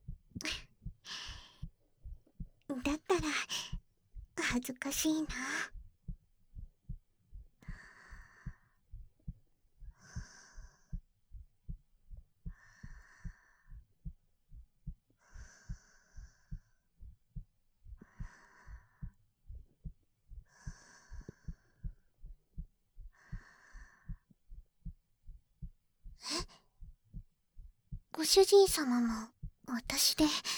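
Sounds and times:
heartbeat thumping in a quick even rhythm: 0.0s - 30.5s
soft breathing: 0.4s - 1.7s, 2.8s - 3.8s, 7.6s - 8.8s, 9.8s - 11.0s, 12.4s - 13.9s, 15.2s - 16.9s, 17.9s - 19.2s, 20.4s - 22.1s, 23.0s - 24.4s, 26.2s - 26.7s, 30.1s - 30.5s
speech: 4.6s - 5.7s, 28.6s - 29.3s, 30.2s - 30.5s.

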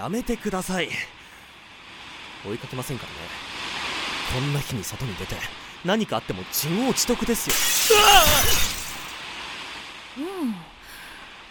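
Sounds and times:
speech: 0.0s - 1.2s, 2.4s - 3.6s, 4.3s - 8.8s, 10.2s - 10.8s
glass shattering and landing on a main dish: 7.5s - 9.2s
person exclaiming: 7.7s - 9.0s.

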